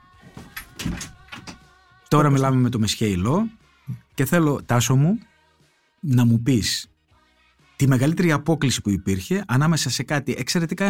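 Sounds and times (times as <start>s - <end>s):
door being closed: 0.3s - 1.7s
speech: 2.1s - 5.3s, 6.0s - 6.9s, 7.8s - 10.8s.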